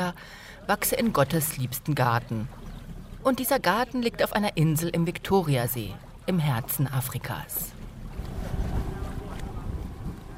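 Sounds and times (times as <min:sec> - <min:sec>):
speech: 0:00.0 - 0:07.8
motorboat engine rumbling while crossing Lake Victoria toward an island near Kampala, Uganda: 0:00.6 - 0:10.3
rushing wind noise: 0:08.1 - 0:10.3.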